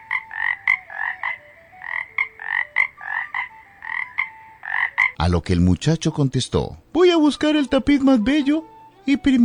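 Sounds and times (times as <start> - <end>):
toad croaking: 0.0 - 5.3
speech: 5.3 - 9.4.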